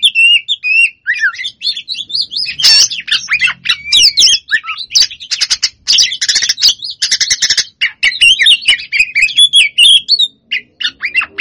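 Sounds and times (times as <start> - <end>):
lovebird long chattering song: 0.0 - 11.3.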